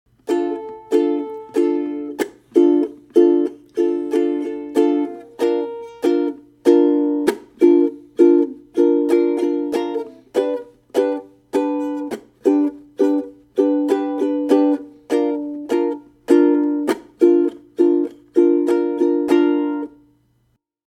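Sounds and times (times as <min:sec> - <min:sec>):
ukulele intro strum: 0:00.1 - 0:20.2.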